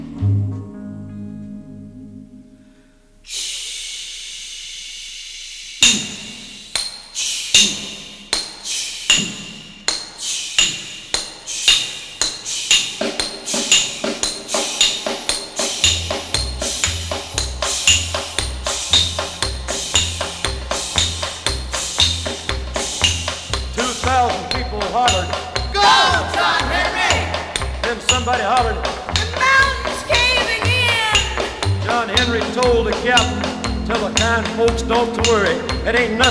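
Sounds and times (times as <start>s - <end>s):
low musical tones: 0.0s - 3.2s, 16.5s - 36.2s
hammers striking steel railroad spikes: 5.8s - 36.2s.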